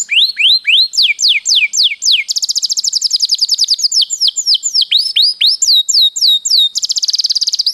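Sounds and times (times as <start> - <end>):
canary singing: 0.0 - 7.7.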